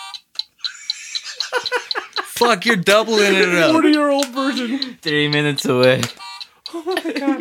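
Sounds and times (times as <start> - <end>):
electronic game buzzer with button being hit: 0.0 - 0.2, 6.1 - 6.5
laughter: 0.6 - 5.1, 6.7 - 7.3
speech: 2.4 - 7.3.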